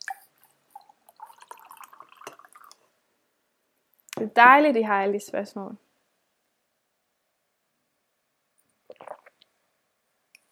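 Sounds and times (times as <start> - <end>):
tea dripping into a cup: 0.0 - 2.8
tea pouring into a cup: 0.0 - 2.8
speech: 4.2 - 5.8.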